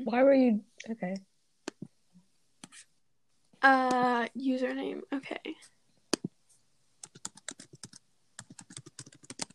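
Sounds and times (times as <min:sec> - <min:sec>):
speech: 0:00.1 - 0:01.3, 0:03.6 - 0:05.7
rapid typing on a computer keyboard: 0:07.0 - 0:09.5.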